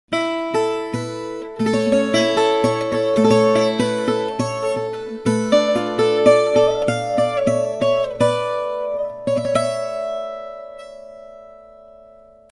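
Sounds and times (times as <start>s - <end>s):
Portuguese guitar playing: 0.1s - 12.5s.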